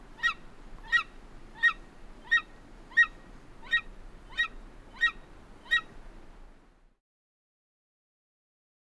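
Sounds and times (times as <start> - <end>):
golden eagle calls: 0.2 - 5.9.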